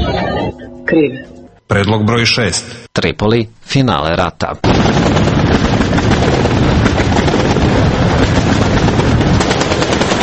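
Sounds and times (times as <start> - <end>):
speech: 0.9 - 5.3
explosions in Tripoli, Libya: 4.6 - 10.2
rapid gunfire in Tripoli, Libya: 4.6 - 10.2.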